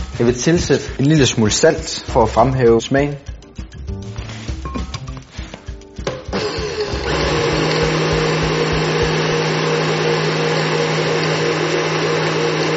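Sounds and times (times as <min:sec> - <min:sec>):
speech: 0:00.2 - 0:03.3
blender grinding burnt ash into powder: 0:06.1 - 0:12.7.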